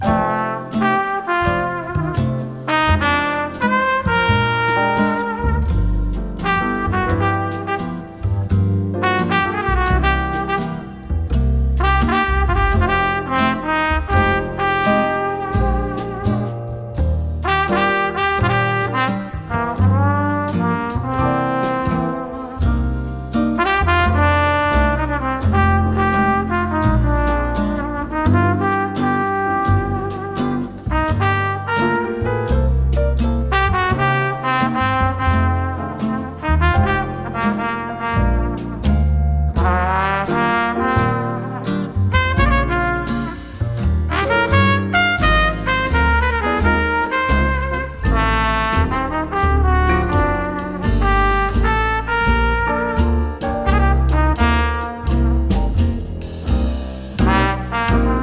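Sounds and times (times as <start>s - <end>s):
slow music: 0.1s - 58.2s.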